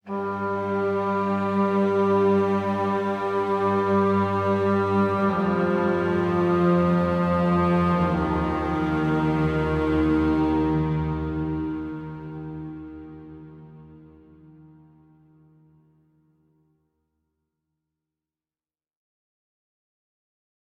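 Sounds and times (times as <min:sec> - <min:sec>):
space ambient music: 0:00.1 - 0:15.7.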